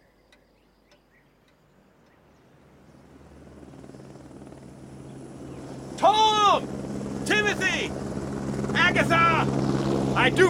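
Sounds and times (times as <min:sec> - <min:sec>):
helicopter rotor thumping: 0:03.0 - 0:10.4
speech: 0:07.5 - 0:08.2, 0:08.8 - 0:10.4.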